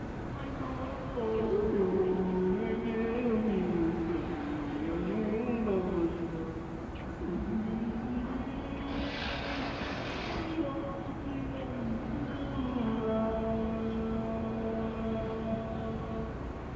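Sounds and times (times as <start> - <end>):
karaoke singing: 0.2 - 16.6.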